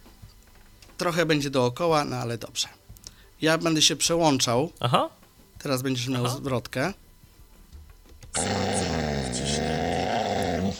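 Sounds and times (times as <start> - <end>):
speech: 1.0 - 2.8, 3.4 - 7.0
dog growling: 8.4 - 10.7.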